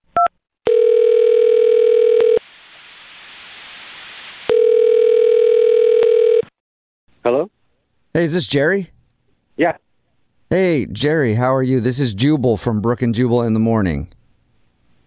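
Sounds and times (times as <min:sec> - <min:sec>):
steady telephone dial tone: 0:00.2 - 0:02.4, 0:04.5 - 0:06.5
telephone line hiss: 0:02.4 - 0:04.5
speech: 0:08.1 - 0:08.9, 0:09.6 - 0:09.8, 0:10.5 - 0:14.2.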